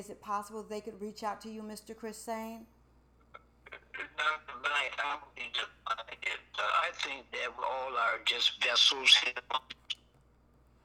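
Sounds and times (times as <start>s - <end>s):
speech: 0.0s - 2.8s, 4.2s - 9.9s
tinny telephone-quality voice breaking up on a phone line: 3.6s - 10.0s.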